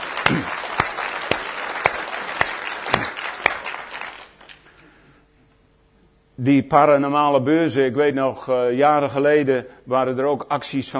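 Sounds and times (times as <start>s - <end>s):
audience applause: 0.0s - 4.8s
speech: 0.3s - 0.6s, 6.4s - 10.9s.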